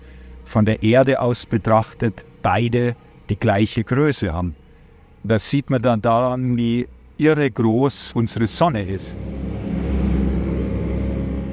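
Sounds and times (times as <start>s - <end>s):
speech: 0.5s - 4.6s, 5.2s - 9.4s
propeller-driven airboat on border patrol in a swamp roaring: 8.1s - 11.5s.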